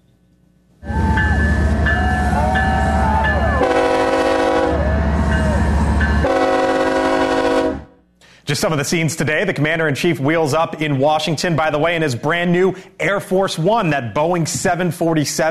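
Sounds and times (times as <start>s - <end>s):
train rumbling and rattling on the rails toward Medora, North Dakota: 0.8s - 7.9s
speech: 8.5s - 15.4s.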